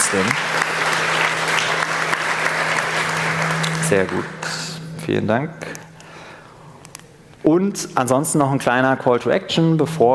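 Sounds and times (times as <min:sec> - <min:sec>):
audience applauding for the operators: 0:00.0 - 0:04.8
speech: 0:00.1 - 0:00.6, 0:03.9 - 0:05.8, 0:07.4 - 0:10.1.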